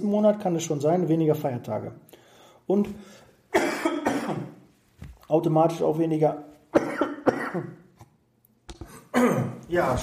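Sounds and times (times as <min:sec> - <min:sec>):
speech: 0:00.0 - 0:04.6, 0:05.3 - 0:06.8, 0:07.6 - 0:07.8, 0:09.2 - 0:10.0
person coughing harshly in a fit: 0:03.5 - 0:04.6, 0:06.7 - 0:07.9, 0:08.8 - 0:09.7
throat clearing: 0:03.6 - 0:04.6, 0:06.8 - 0:07.8, 0:08.7 - 0:09.7.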